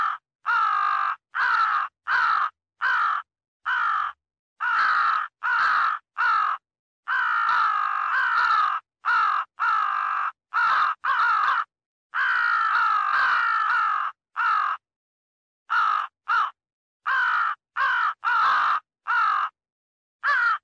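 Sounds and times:
crow cawing: 0.0s - 14.8s, 15.7s - 19.6s, 20.2s - 20.6s.

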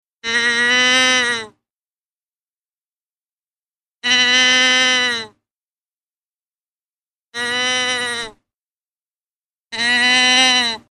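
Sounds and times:
doe deer bleating: 0.2s - 1.6s, 4.0s - 5.4s, 7.4s - 8.4s, 9.7s - 10.8s.

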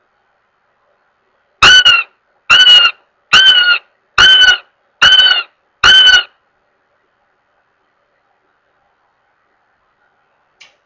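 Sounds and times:
Northern goshawk wailing with loud drawn-out nasal squeals: 1.6s - 6.3s.

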